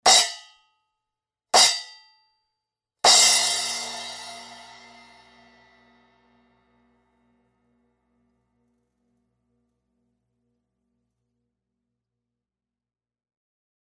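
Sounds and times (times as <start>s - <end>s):
splash cymbal crash choked: 3.1s - 6.4s.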